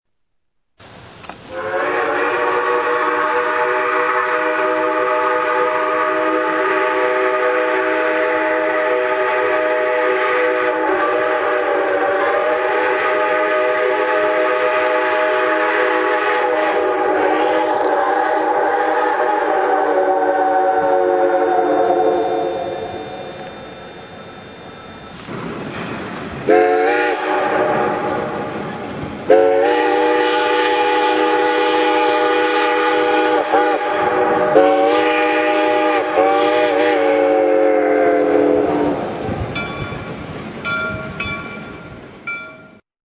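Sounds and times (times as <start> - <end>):
steam whistles: 1.5 - 25.3, 26.4 - 40.2
chime: 22.4 - 25.3, 39.6 - 42.8.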